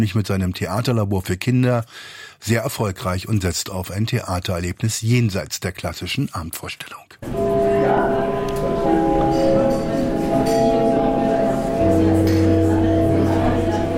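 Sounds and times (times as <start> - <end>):
speech: 0.0 - 9.6
crowd chattering: 7.2 - 13.9
theatre gong chiming to call the audience: 7.2 - 13.9.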